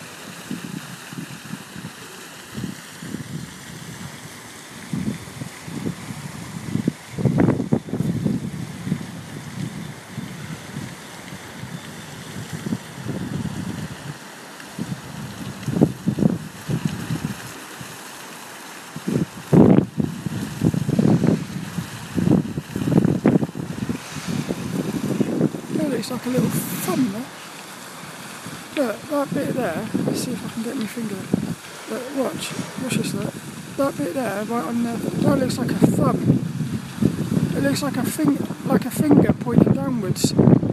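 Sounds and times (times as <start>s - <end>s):
gusty wind buffeting the mic on a very windy day: 0.0s - 18.0s, 18.9s - 40.7s
small water fountain splashing: 0.0s - 40.7s
speech: 26.1s - 27.3s, 28.8s - 36.5s, 37.6s - 40.7s.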